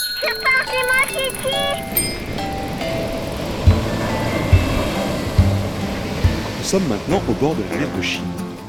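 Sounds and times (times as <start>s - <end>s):
tinny jingly music at a village kindergarten: 0.0s - 7.1s
steady low thumps keeping a beat: 2.7s - 7.6s
speech: 6.7s - 8.4s.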